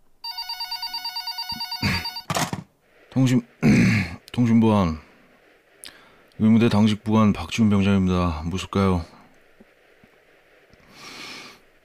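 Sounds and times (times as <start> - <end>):
telephone bell ringing: 0.2 - 2.4
telephone receiver grabbed and lifted with clattering knocks: 1.6 - 2.8
speech: 3.2 - 5.1, 6.4 - 9.2.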